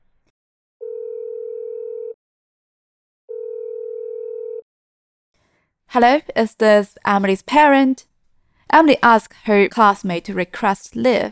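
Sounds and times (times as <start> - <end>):
telephone ringing with long electronic tones for an incoming call: 0.8 - 2.2, 3.3 - 4.6
speech: 5.9 - 8.1, 8.7 - 11.2.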